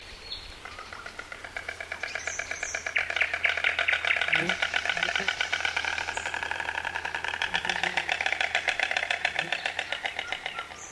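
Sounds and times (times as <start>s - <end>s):
white stork making a dry rattling clatter: 0.6s - 10.9s.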